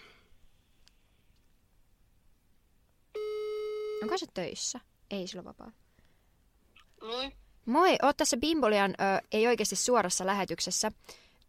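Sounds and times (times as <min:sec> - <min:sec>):
loud steady telephone ringing tone while calling: 0:03.2 - 0:04.2
speech: 0:04.0 - 0:05.8, 0:07.0 - 0:11.4.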